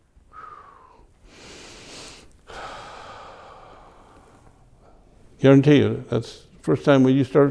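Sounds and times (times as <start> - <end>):
deep conscious breathing: 0.3 - 5.4
speech: 5.4 - 7.4.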